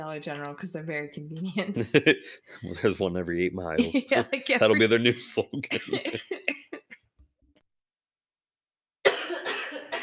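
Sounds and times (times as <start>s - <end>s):
speech: 0.0s - 6.4s
laughter: 1.6s - 3.0s, 3.8s - 7.0s
person coughing: 5.6s - 6.4s, 9.0s - 10.0s.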